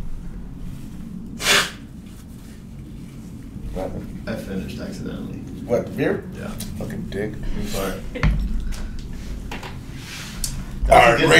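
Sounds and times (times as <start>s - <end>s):
low hum: 0.0s - 11.3s
nose blowing: 1.4s - 1.9s
speech: 3.8s - 8.5s, 10.9s - 11.3s.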